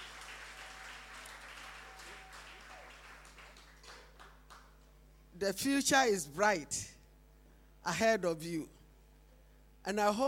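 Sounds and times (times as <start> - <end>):
large audience applauding in a big room: 0.0 - 4.7
speech: 5.4 - 6.9, 7.8 - 8.8, 9.8 - 10.2.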